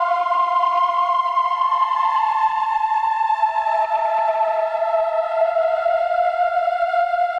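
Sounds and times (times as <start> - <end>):
80s flavour synth pad in electric jazz style: 0.0 - 7.3.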